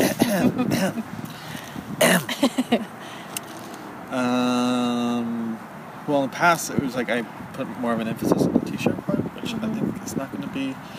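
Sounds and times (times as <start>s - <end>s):
person clearing throat: 0.0s - 1.0s, 2.0s - 2.5s
speech: 0.4s - 1.2s, 2.4s - 3.0s, 4.1s - 10.9s.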